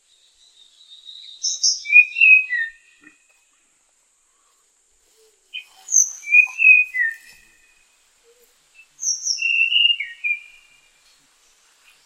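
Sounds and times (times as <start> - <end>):
Tanahjampea Blue Flycatcher singing high whistled slurs: 1.2 - 2.9, 5.9 - 7.4, 9.0 - 10.8.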